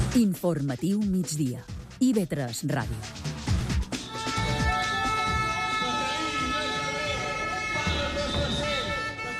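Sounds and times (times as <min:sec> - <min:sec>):
speech: 0:00.1 - 0:03.3
horns blaring at a teachers' protest rally: 0:03.9 - 0:09.3
shrill whistles at a teachers' protest rally: 0:04.0 - 0:09.3
overlapping voices shouting at a protest rally: 0:04.2 - 0:09.3
churning crowd of protesting teachers: 0:04.5 - 0:09.3.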